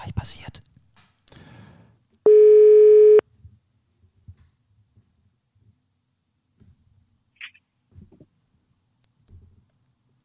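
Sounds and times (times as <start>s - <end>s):
speech: 0.2s - 0.7s
telephone ringing tone while a call connects: 2.3s - 3.2s.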